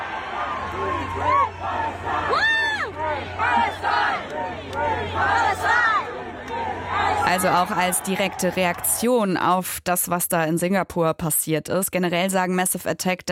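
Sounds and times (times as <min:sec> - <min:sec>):
large concert audience chanting a political slogan in unison: 0:00.0 - 0:09.0
speech: 0:01.2 - 0:01.8, 0:07.3 - 0:13.3.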